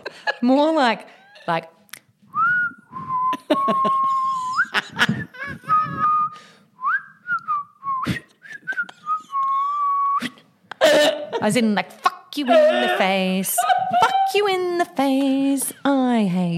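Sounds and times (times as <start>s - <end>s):
laughter: 0.0s - 1.6s, 3.3s - 6.3s, 10.7s - 11.8s, 12.4s - 15.9s
speech: 0.4s - 1.8s, 3.7s - 5.2s, 11.4s - 16.5s
slow passive-aggressive human whistling: 2.3s - 4.8s, 5.7s - 10.4s.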